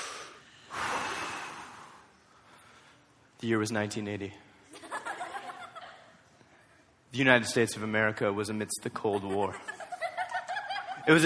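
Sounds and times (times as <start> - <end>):
deep breath: 0.0 - 3.2
speech: 3.4 - 4.5, 7.1 - 9.7, 11.1 - 11.2
laughter: 4.8 - 6.3, 9.1 - 11.2.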